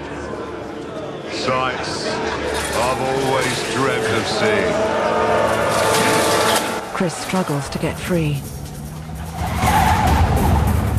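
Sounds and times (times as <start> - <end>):
speech: 1.4 - 6.1, 7.0 - 8.6
speeding car engine roaring in a night chase: 2.5 - 10.9
car tires squealing and skidding: 3.7 - 6.8, 8.9 - 10.9.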